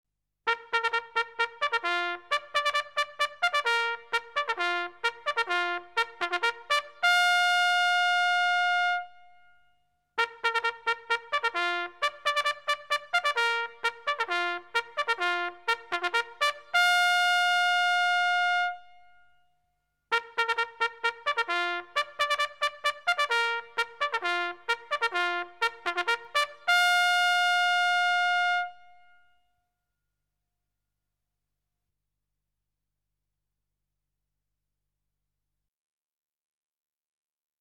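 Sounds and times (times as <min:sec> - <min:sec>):
military trumpet ringtone: 0:00.5 - 0:09.2, 0:10.2 - 0:19.0, 0:20.1 - 0:29.2.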